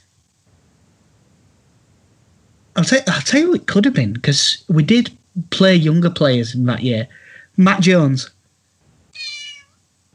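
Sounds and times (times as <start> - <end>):
speech: 2.8 - 8.4
cat meowing: 9.1 - 9.8.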